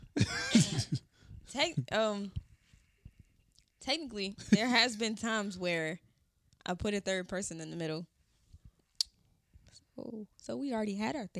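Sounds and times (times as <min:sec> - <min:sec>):
person coughing harshly: 0:00.0 - 0:01.1
speech: 0:01.6 - 0:02.4, 0:03.9 - 0:06.0, 0:06.6 - 0:08.1, 0:10.0 - 0:11.3.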